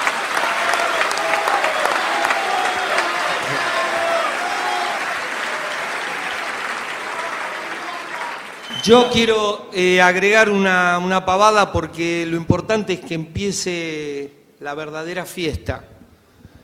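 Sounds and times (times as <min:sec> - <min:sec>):
audience applause at a comedy show: 0:00.0 - 0:09.3
speech: 0:08.8 - 0:15.9.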